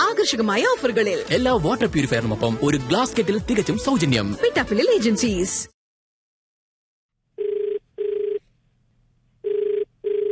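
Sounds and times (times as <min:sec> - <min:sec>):
speech: 0:00.2 - 0:05.8
telephone ringing for a radio phone-in call: 0:07.4 - 0:08.4, 0:09.4 - 0:10.3.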